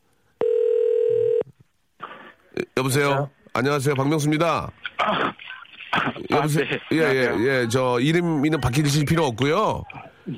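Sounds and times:
telephone ringing tone of a call being placed: 0.4 - 1.5
speech: 2.6 - 5.4, 6.0 - 10.3.

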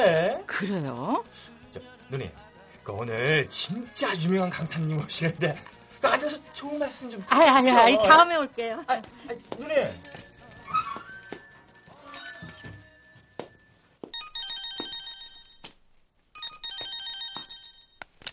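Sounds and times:
speech: 0.0 - 10.3
telephone with high electronic trilling ringtone: 10.0 - 15.7, 16.4 - 18.0.

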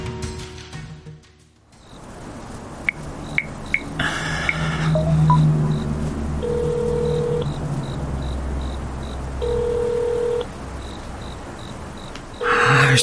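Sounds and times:
phone keypad beeps dialing a number: 2.9 - 13.0
phone ringback tone: 2.9 - 13.0.

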